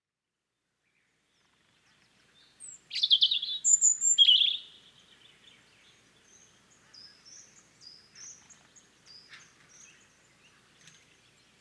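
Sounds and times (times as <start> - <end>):
European robin Erithacus rubecula song: 2.9 - 4.8.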